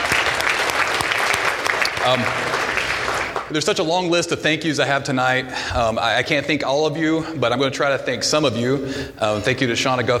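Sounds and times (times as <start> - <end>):
academy audience applauding: 0.0 - 3.6
speech: 2.0 - 10.1.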